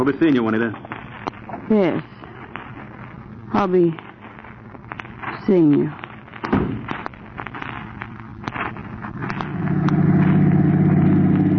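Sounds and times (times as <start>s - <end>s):
speech: 0.0s - 0.9s, 1.7s - 2.1s, 3.5s - 4.0s, 5.5s - 6.9s
sharp clicks and pops: 0.3s - 1.7s, 2.5s - 10.5s
car engine droning while driving along the road: 9.0s - 11.5s.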